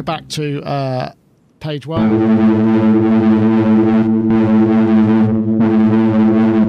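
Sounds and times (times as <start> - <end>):
speech: 0.0 - 4.6
heavily distorted synthesizer drone: 2.0 - 6.6.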